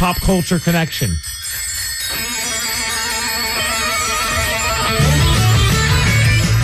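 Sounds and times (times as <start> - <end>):
small bicycle bells ringing: 0.0 - 6.6
speech: 0.1 - 1.3
music with steady low bass line: 4.3 - 6.6.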